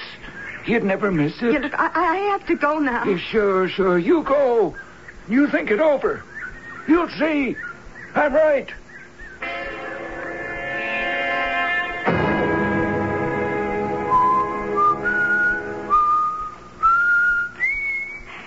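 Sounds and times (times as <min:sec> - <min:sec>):
speech: 0:00.7 - 0:06.3, 0:06.9 - 0:08.8
steady humming tone: 0:03.8 - 0:18.4
person whistling a tune: 0:14.0 - 0:18.3.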